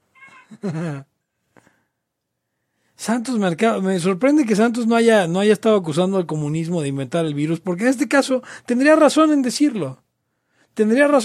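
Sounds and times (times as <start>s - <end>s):
cat meowing loudly: 0.0s - 0.5s
speech: 0.5s - 1.1s, 3.0s - 10.0s, 10.8s - 11.2s.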